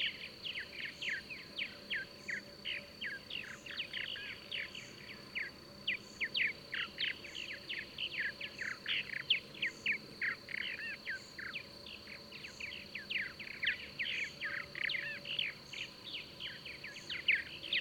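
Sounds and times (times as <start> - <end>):
bird singing: 0.0 - 17.8
constant high insect drone: 0.0 - 17.8.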